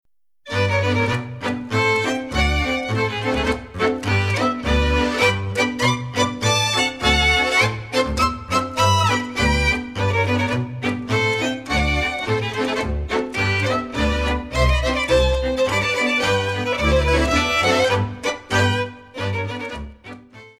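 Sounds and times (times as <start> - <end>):
Schottische dance tune from Neustift: 0.5 - 20.5.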